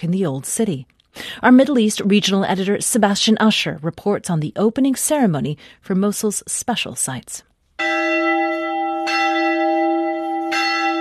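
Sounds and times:
speech: 0.0 - 7.5
church bells ringing with sustained humming resonance: 7.8 - 10.9.

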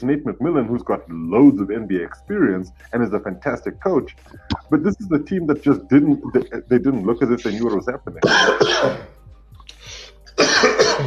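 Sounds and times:
speech: 0.0 - 9.2
harsh coughing: 7.5 - 9.2, 10.4 - 11.0.

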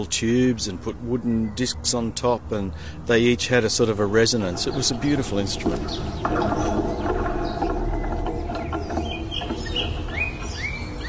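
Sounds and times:
speech: 0.0 - 7.2
dense steady outdoor hum: 0.0 - 11.0
single songbird singing chirps and whistles in Benmore: 5.7 - 11.0.

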